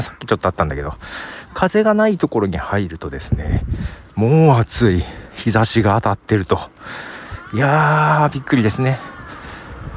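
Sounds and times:
crow cawing outdoors: 0.0s - 2.0s, 6.7s - 9.9s
speech: 0.0s - 9.1s.

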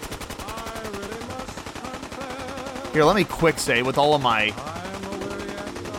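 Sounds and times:
rapid video game gunfire: 0.0s - 5.9s
speech: 2.9s - 4.8s
faint tonal video game sounds: 3.0s - 5.9s.

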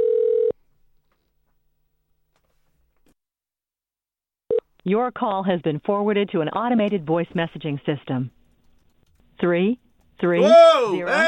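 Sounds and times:
outgoing phone call ringback tone: 0.0s - 0.5s
speech: 4.8s - 8.4s, 9.4s - 11.2s.

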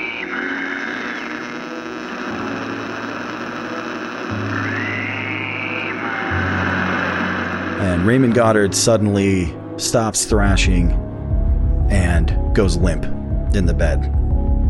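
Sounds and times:
radio static: 0.0s - 9.0s
speech: 8.0s - 11.0s, 11.9s - 14.2s.

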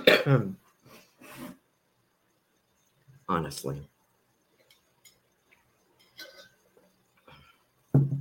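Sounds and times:
loud cough: 0.0s - 0.4s
speech: 0.2s - 0.6s, 3.3s - 3.9s.

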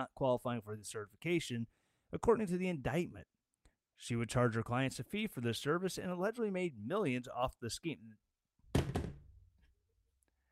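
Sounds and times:
speech: 0.0s - 3.3s, 4.0s - 8.2s
phone dropping and bouncing on a desk: 8.7s - 9.3s.

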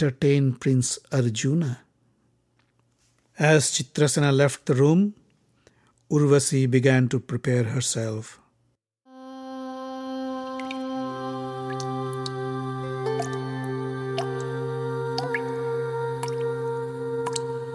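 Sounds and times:
speech: 0.0s - 1.8s, 3.4s - 5.2s, 6.1s - 8.4s
humming tonal drone: 9.1s - 17.7s
water dripping for a bath: 13.0s - 14.5s, 15.1s - 15.6s, 16.2s - 16.6s, 17.2s - 17.6s.

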